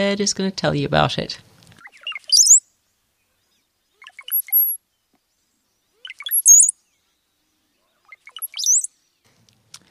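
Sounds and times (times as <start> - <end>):
speech: 0.0 - 1.5
brown-headed cowbird song with liquid gurgling notes and high whistles: 1.7 - 9.4.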